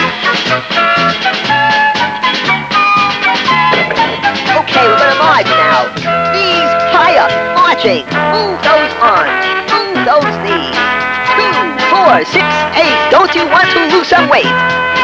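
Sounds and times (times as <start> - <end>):
march music: 0.7 - 15.0.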